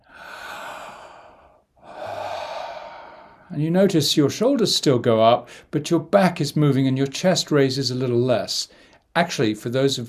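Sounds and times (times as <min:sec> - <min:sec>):
deep breathing in during a breathing exercise: 0:00.0 - 0:03.5, 0:05.5 - 0:05.7
speech: 0:03.5 - 0:10.0.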